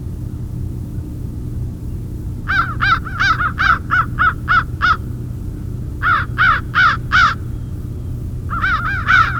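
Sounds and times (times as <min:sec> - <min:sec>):
crows cawing in winter in Mississippi: 0:02.4 - 0:09.3.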